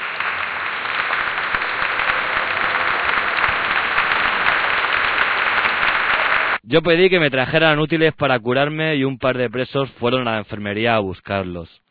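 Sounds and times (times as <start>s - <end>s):
crowd applauding: 0.0s - 6.6s
speech: 6.7s - 11.8s.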